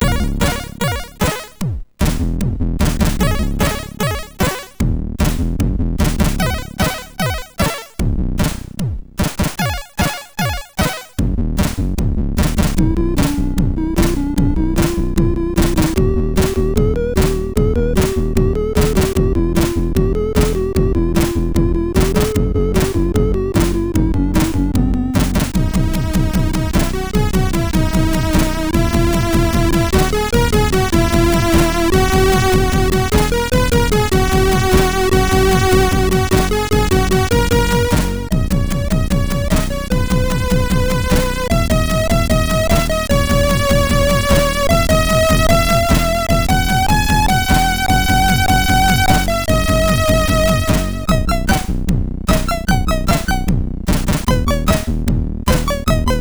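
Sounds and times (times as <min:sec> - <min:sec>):
MOS 6581R4 sound chip: 0:00.0 - 0:02.2, 0:02.8 - 0:05.4, 0:06.0 - 0:08.6, 0:09.2 - 0:11.7, 0:12.4 - 0:56.2.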